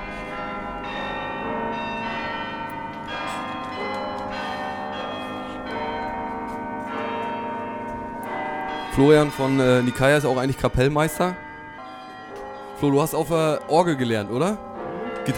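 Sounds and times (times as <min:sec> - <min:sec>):
church bells pealing: 0:00.0 - 0:15.3
speech: 0:09.0 - 0:11.4, 0:12.8 - 0:15.3.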